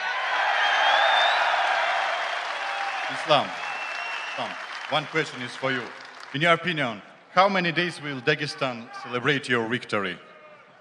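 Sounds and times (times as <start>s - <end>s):
large crowd cheering and applauding: 0.0s - 6.7s
speech: 3.1s - 3.6s, 4.4s - 10.3s.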